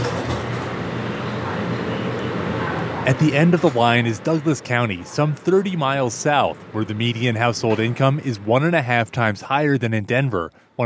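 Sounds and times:
light rail train pulling in: 0.0s - 8.5s
speech: 3.1s - 10.8s.

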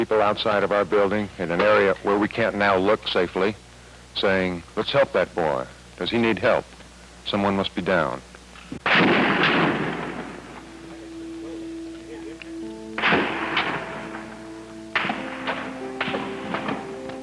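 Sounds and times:
speech: 0.0s - 3.6s, 4.2s - 9.1s
bullets ricocheting off the top of a building: 8.8s - 10.4s, 13.0s - 14.3s, 15.0s - 16.9s
gunfire from a shooter in a clock tower: 8.8s - 10.7s, 13.0s - 17.0s.

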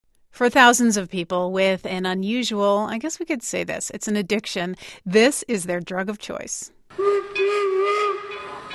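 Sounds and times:
speech: 0.4s - 7.4s
old-fashioned steam locomotive whistle blowing: 7.0s - 8.7s.

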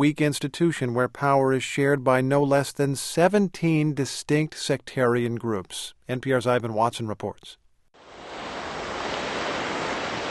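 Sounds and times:
speech: 0.0s - 7.6s
heavy waves washing onto an oil-stained Beirut beach: 8.0s - 10.3s.

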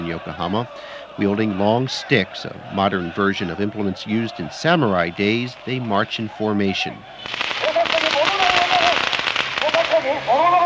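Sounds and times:
laughter: 0.0s - 9.0s
actors playing hooligans shouting: 0.0s - 10.6s
speech: 0.1s - 7.5s
firecrackers popping outdoors during a police riot training exercise in Yokohama Japan: 5.0s - 10.6s.

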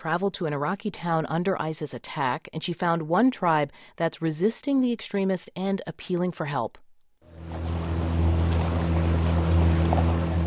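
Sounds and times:
speech: 0.0s - 6.8s
boat motor droning while crossing a river through reeds: 7.3s - 10.4s
water wash: 7.3s - 10.4s.

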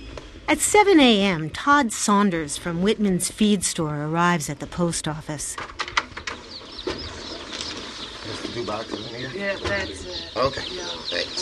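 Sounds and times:
speech: 0.5s - 5.8s, 8.6s - 11.4s
two-day-old newly hatched chicks peeping in shipping boxes at a post office: 5.0s - 11.4s.

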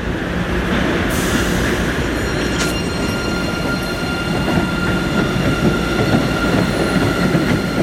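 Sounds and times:
train leaving the station: 0.0s - 7.8s
high violin-like drone from the train: 2.0s - 7.8s.

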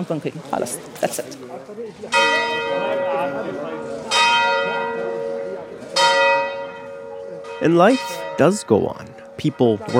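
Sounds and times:
speech: 0.0s - 5.2s, 7.6s - 9.9s
church bells tolling for Mass: 2.1s - 9.9s.

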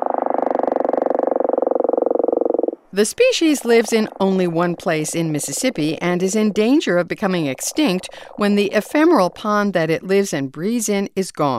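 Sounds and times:
dusky gopher frog from Mississippi calling: 0.0s - 9.4s
speech: 3.0s - 11.5s.

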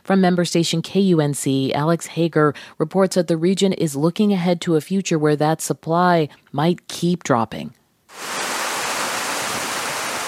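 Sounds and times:
speech: 0.1s - 8.3s
water rushing into a storage basin onto cracked desert ground: 8.1s - 10.2s.

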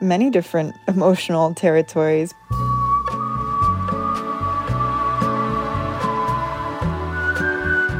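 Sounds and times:
speech: 0.0s - 2.4s
backing music with bass and light percussion: 2.5s - 7.9s
person whistling a slow sustained melody: 2.6s - 7.9s.

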